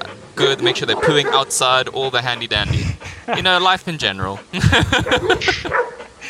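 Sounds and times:
dog barking in sharp yaps and yips: 0.4 - 1.7, 4.8 - 6.0
speech: 0.4 - 5.9
laughter: 2.0 - 6.2.

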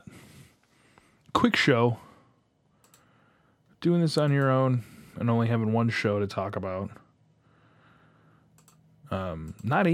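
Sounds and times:
steady low electrical hum: 0.0 - 9.9
speech: 1.4 - 2.0, 3.8 - 7.0, 9.1 - 9.9
computer mouse clicks: 2.8 - 3.1, 8.6 - 8.8, 9.4 - 9.8.

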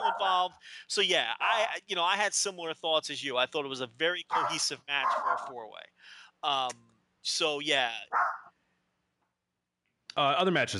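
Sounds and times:
dog barking in high-pitched bursts: 0.0 - 0.4, 4.3 - 5.6, 8.1 - 8.5
speech: 0.2 - 8.4, 10.2 - 10.7.

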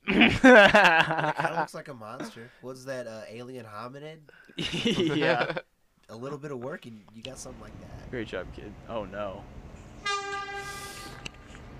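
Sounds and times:
laughter: 0.1 - 2.3, 4.6 - 5.6
speech: 0.3 - 9.6
passing train rumble: 7.4 - 11.7
train horn blast: 9.9 - 11.6.

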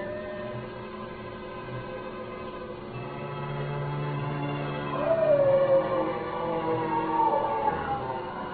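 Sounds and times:
dull constant background: 0.0 - 8.5
dog howling: 4.9 - 8.5.

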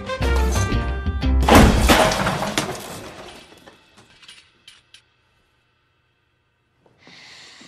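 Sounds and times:
clattering tinkling debris: 0.2 - 4.7
hurled chair crashing: 0.3 - 3.7.

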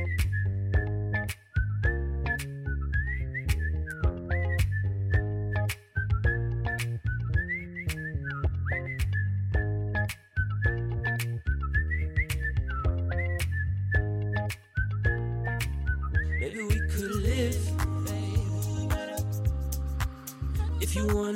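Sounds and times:
whistling melody over a pop song: 0.0 - 21.3
pop song with steady beat and deep bass: 15.0 - 21.3.

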